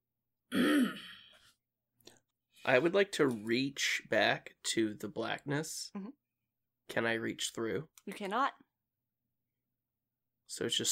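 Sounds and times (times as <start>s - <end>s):
rough throaty cough in a chill damp place of worked stone: 0.5s - 1.3s
speech: 2.6s - 6.2s, 6.9s - 8.6s, 10.5s - 10.9s.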